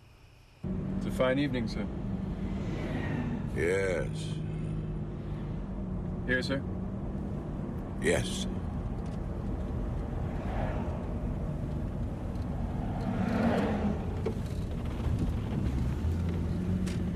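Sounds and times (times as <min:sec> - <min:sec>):
car engine humming while driving in the evening: 0:00.6 - 0:17.1
road noise: 0:00.6 - 0:17.1
whooshes of passing traffic or wind: 0:00.6 - 0:17.1
speech: 0:01.2 - 0:02.0, 0:03.6 - 0:04.4, 0:06.3 - 0:06.7, 0:08.0 - 0:08.6.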